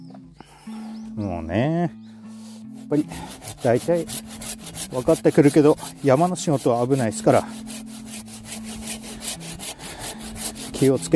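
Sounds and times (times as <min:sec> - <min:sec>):
speech: 0:01.2 - 0:02.0, 0:02.9 - 0:07.7, 0:10.8 - 0:11.1
hand saw cutting through a standing tree during mountain forestry work: 0:02.3 - 0:11.1.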